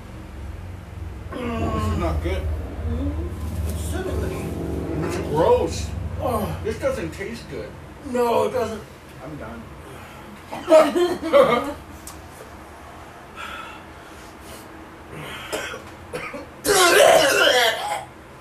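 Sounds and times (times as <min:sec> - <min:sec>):
speech: 0:02.1 - 0:04.4, 0:05.1 - 0:09.8, 0:10.5 - 0:11.8
person coughing after inhaling hot food: 0:15.2 - 0:18.1.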